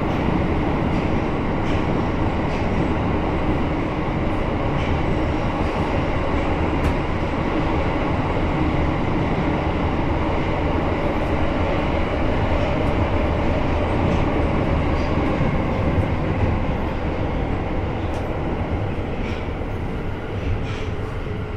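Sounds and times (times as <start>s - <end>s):
subway train running between stations: 0.0s - 21.5s.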